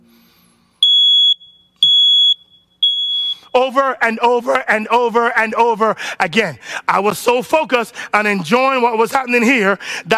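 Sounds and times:
smoke alarm beeping: 0:00.8 - 0:03.8
speech: 0:03.5 - 0:10.1.

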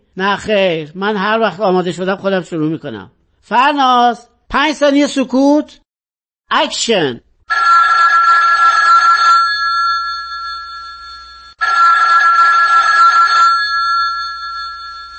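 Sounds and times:
speech: 0:00.2 - 0:05.8, 0:06.5 - 0:07.9
telephone ringing in an electronic trill: 0:07.5 - 0:15.1.

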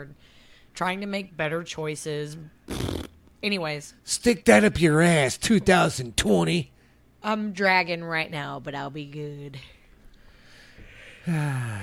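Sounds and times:
speech: 0:00.0 - 0:09.8, 0:11.2 - 0:11.8
voiced yawn: 0:11.2 - 0:11.8.

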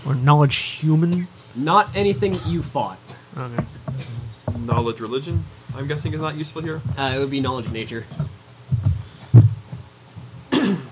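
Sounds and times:
speech: 0:00.0 - 0:08.4
player coughing at a tabletop role-playing game session: 0:02.0 - 0:03.3, 0:04.0 - 0:04.3, 0:10.5 - 0:10.9.

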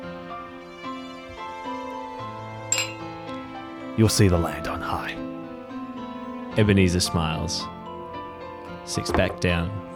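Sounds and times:
soft sustained music: 0:00.0 - 0:09.9
two drinking glasses clinking together in a toast: 0:02.7 - 0:03.2
speech: 0:04.0 - 0:05.2, 0:06.6 - 0:07.8, 0:08.9 - 0:09.9.

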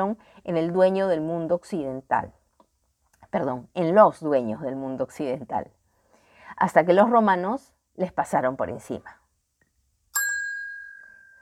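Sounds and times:
speech: 0:00.0 - 0:02.4, 0:03.3 - 0:05.8, 0:06.5 - 0:09.2
bell ringing: 0:10.2 - 0:11.4.

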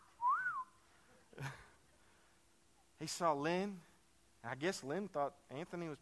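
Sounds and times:
person whistling: 0:00.0 - 0:00.8
speech: 0:03.0 - 0:06.0.

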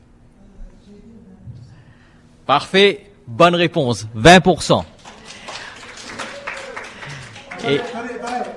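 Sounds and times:
speech: 0:02.5 - 0:04.9, 0:07.6 - 0:08.0
audience applauding in a room: 0:05.0 - 0:08.5.

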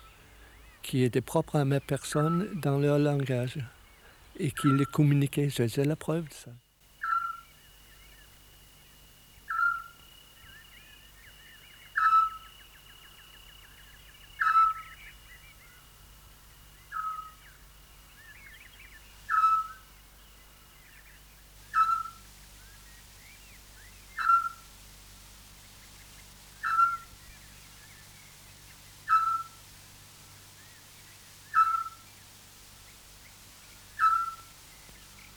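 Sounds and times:
speech: 0:00.9 - 0:03.8, 0:04.4 - 0:06.6
Eurasian scops owl giving whistled hoots: 0:04.4 - 0:05.0, 0:07.0 - 0:07.5, 0:09.5 - 0:10.6, 0:11.9 - 0:12.6, 0:14.2 - 0:15.5, 0:16.8 - 0:17.6, 0:18.3 - 0:19.9, 0:21.6 - 0:22.8, 0:24.1 - 0:24.8, 0:26.5 - 0:29.7, 0:30.8 - 0:32.7, 0:33.3 - 0:34.6.

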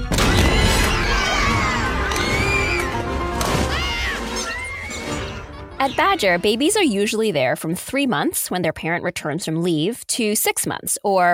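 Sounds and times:
toddlers shouting and shrieking: 0:00.4 - 0:06.2
speech: 0:05.8 - 0:11.3.

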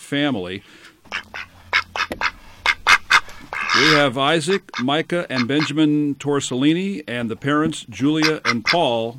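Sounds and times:
speech: 0:00.1 - 0:01.4, 0:03.8 - 0:09.1
faint low hum: 0:00.4 - 0:08.9
duck quacking: 0:01.1 - 0:06.0, 0:08.0 - 0:09.1.

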